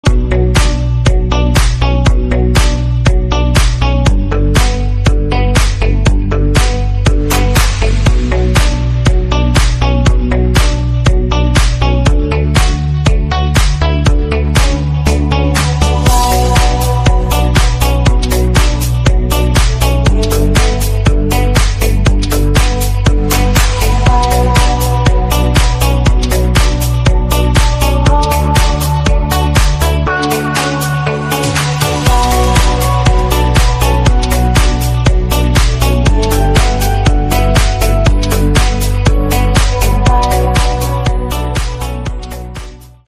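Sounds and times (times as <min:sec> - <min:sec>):
shuffle dance music: 0:00.0 - 0:43.0.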